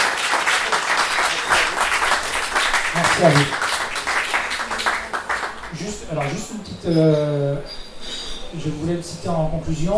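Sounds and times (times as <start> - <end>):
audience applause at a science café evening: 0.0 - 6.5
speech: 3.2 - 3.6, 5.8 - 7.8, 8.5 - 9.9.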